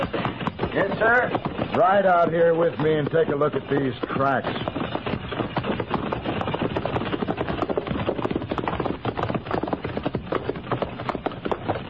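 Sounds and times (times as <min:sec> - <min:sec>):
hooves of a pony and mules clip-clopping: 0:00.0 - 0:11.8
speech: 0:01.0 - 0:04.8.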